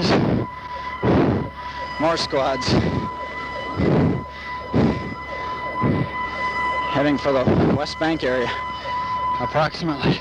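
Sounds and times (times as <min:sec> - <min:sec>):
emergency vehicle sirens: 0:00.0 - 0:10.1
speech: 0:02.0 - 0:03.2, 0:07.0 - 0:10.1.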